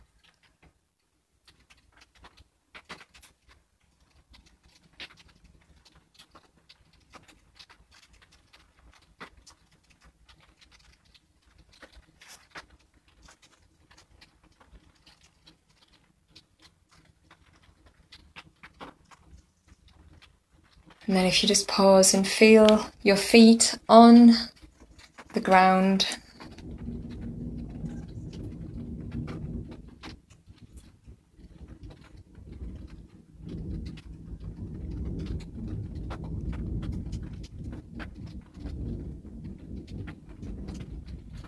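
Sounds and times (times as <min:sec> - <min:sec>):
steady rain: 0:00.0 - 0:41.4
speech: 0:21.1 - 0:24.5, 0:25.5 - 0:26.2.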